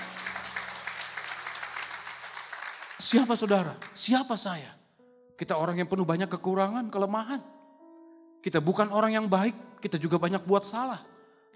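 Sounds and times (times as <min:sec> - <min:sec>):
audience applauding: 0:00.0 - 0:04.1
speech: 0:03.0 - 0:04.8, 0:05.4 - 0:07.5, 0:08.4 - 0:11.5.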